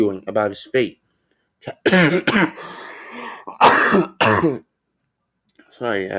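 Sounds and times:
speech: 0:00.0 - 0:01.0, 0:01.6 - 0:04.7, 0:05.8 - 0:06.1
harsh coughs: 0:01.8 - 0:02.6, 0:03.5 - 0:04.7
person clearing throat: 0:01.9 - 0:02.6, 0:03.5 - 0:04.6.

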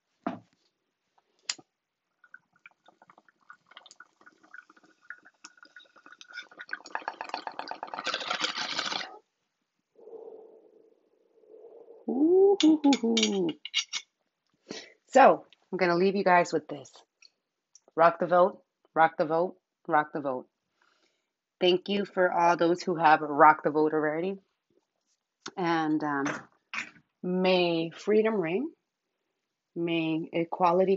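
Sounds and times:
rapid bubbling of water in a bong: 0:02.2 - 0:09.2
speech: 0:12.6 - 0:13.7, 0:15.1 - 0:17.0, 0:18.0 - 0:20.5, 0:21.6 - 0:24.5, 0:25.6 - 0:26.5, 0:27.2 - 0:28.8, 0:29.8 - 0:30.9.

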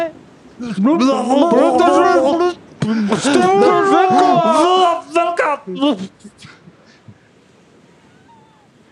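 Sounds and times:
speech: 0:00.0 - 0:06.6
sea waves and surf: 0:02.2 - 0:08.9.

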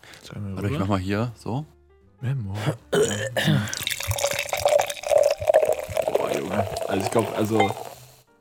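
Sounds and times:
speech: 0:00.3 - 0:04.2, 0:06.4 - 0:07.9
cider pouring into a glass: 0:03.7 - 0:08.2.

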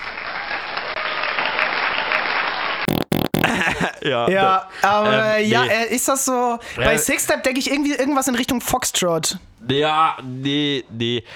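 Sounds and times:
large crowd applauding: 0:00.0 - 0:02.8
laughter: 0:03.4 - 0:05.3
speech: 0:04.0 - 0:11.3.

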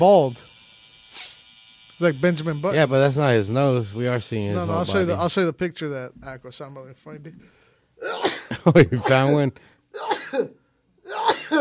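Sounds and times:
speech: 0:00.0 - 0:00.4, 0:02.0 - 0:11.5
sharp explosive sneezes: 0:08.0 - 0:09.2, 0:10.0 - 0:11.5.

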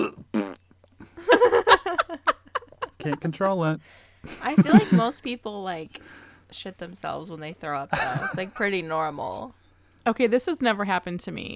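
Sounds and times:
voice imitating a fart with raspy sputtering blurts: 0:00.0 - 0:00.6
laughter: 0:01.1 - 0:05.2, 0:07.9 - 0:08.7
speech: 0:03.0 - 0:11.5.

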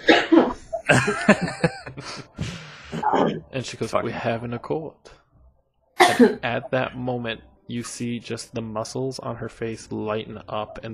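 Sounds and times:
harsh wet coughs: 0:00.0 - 0:02.0, 0:06.0 - 0:06.4
throaty laugh-like breaths: 0:00.8 - 0:03.4
speech: 0:00.9 - 0:01.6, 0:03.6 - 0:05.2, 0:06.1 - 0:10.9.

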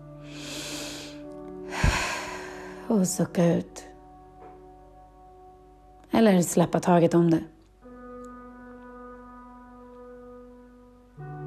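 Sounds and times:
long deep breath drawn in through the nose: 0:00.2 - 0:02.9
sharp sniffing intake: 0:00.3 - 0:02.7
speech: 0:02.9 - 0:03.9, 0:06.2 - 0:07.6.

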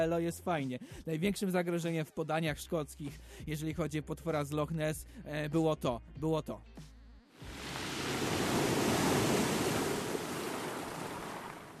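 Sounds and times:
speech: 0:00.0 - 0:07.5
big wave surging and splashing: 0:07.4 - 0:11.7.

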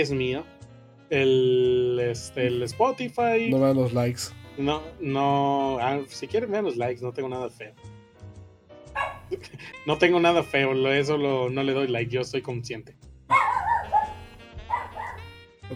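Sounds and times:
speech: 0:00.0 - 0:08.0, 0:09.0 - 0:13.4
dog barking: 0:08.9 - 0:09.4, 0:13.3 - 0:15.4.

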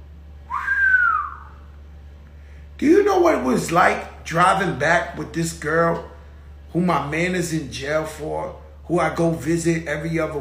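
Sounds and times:
low steady hum: 0:00.0 - 0:10.3
whistle swooping up and down: 0:00.5 - 0:01.7
speech: 0:02.8 - 0:06.1, 0:06.7 - 0:10.3.

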